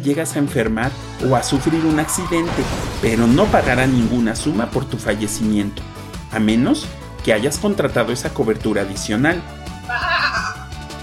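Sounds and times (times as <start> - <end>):
speech: 0.0 - 10.1
sheep bleating: 9.9 - 10.7.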